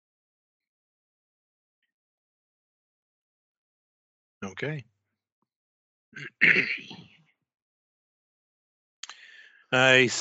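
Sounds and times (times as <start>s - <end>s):
speech: 4.4s - 4.9s, 6.1s - 7.2s, 9.7s - 10.2s
rough throaty cough: 6.2s - 7.1s.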